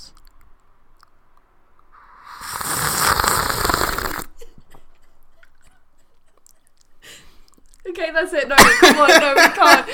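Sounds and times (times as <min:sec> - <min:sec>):
loud drawn-out slurp of tea: 0:01.9 - 0:04.4
speech: 0:08.0 - 0:09.9.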